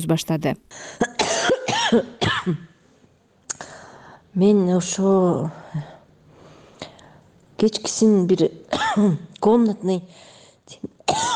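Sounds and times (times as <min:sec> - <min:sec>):
speech: 0:00.0 - 0:02.7, 0:04.4 - 0:05.9, 0:07.6 - 0:11.3
person recovering from a respiratory illness coughing hard: 0:01.0 - 0:02.7, 0:08.7 - 0:09.2, 0:11.1 - 0:11.3.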